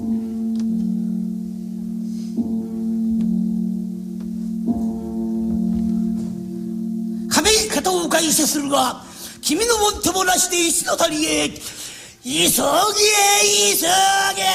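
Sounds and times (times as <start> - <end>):
deep temple bell tolling at dusk: 0.0 - 11.6
speech: 8.2 - 14.5.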